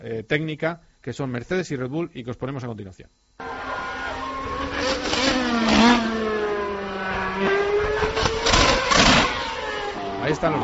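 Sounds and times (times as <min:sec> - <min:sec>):
speech: 0:00.0 - 0:03.5, 0:10.3 - 0:10.6
Formula 1 car engines screaming at high revs: 0:03.4 - 0:10.6.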